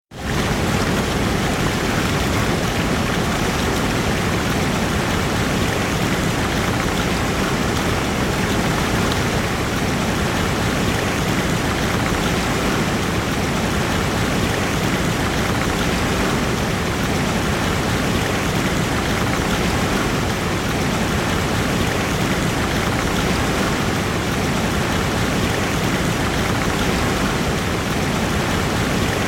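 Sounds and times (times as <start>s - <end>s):
waterfall cascades in Iceland: 0.1s - 29.2s.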